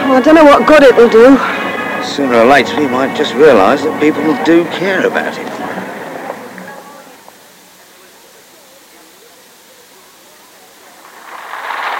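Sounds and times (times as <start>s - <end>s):
speech: 0.1s - 5.6s
steady rainfall: 10.4s - 11.9s.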